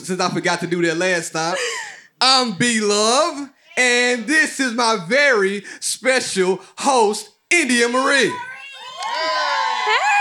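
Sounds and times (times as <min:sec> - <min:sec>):
speech: 0:00.0 - 0:08.5
several raised voices in excited shouts: 0:07.7 - 0:10.2
audience at a live event cheering and whooping: 0:07.9 - 0:10.2.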